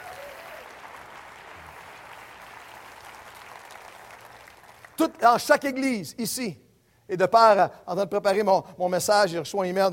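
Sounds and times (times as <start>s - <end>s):
audience applauding: 0.0s - 5.0s
speech: 5.0s - 9.9s.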